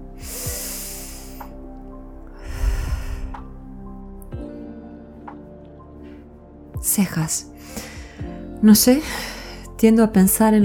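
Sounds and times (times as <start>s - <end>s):
deep breathing in through nose and out through mouth: 0.2s - 1.6s, 2.3s - 3.6s, 7.6s - 9.7s
speech: 6.8s - 7.9s, 8.6s - 10.6s.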